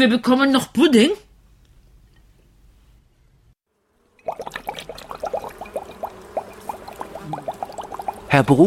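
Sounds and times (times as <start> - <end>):
speech: 0.0 - 1.2, 8.3 - 8.6
greenish liquid poured into a sprayer by a beekeeper: 4.2 - 8.6.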